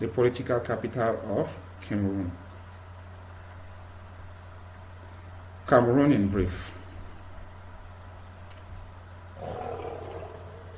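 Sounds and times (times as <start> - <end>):
speech: 0.0 - 2.4, 5.7 - 6.8
steady low hum: 0.0 - 10.7
lion roar: 9.4 - 10.7.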